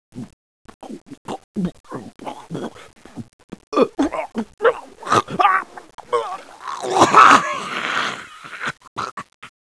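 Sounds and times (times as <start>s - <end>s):
person vomiting: 3.7s - 9.4s.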